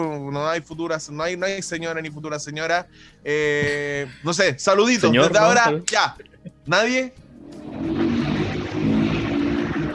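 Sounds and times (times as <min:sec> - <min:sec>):
speech: 0:00.0 - 0:07.2
steady car engine drone with strong low harmonics: 0:07.4 - 0:09.9.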